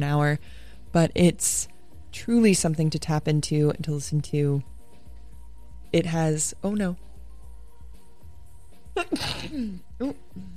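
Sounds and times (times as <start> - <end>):
speech: 0.0 - 4.7, 5.9 - 7.1, 9.0 - 10.5
person sneezing: 9.0 - 9.8.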